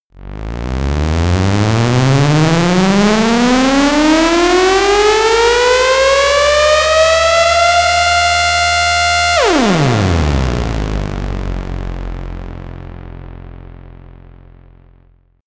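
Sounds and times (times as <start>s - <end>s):
bass synth siren: 0.1s - 15.1s.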